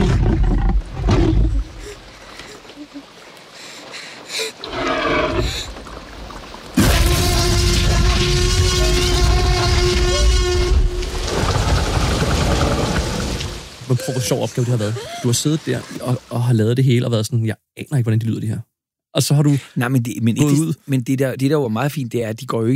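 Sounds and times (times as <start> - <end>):
Tyrannosaurus roar blended from lion and elephant: 0.0 - 1.7, 4.6 - 5.8, 6.8 - 13.6
speech: 14.1 - 22.7.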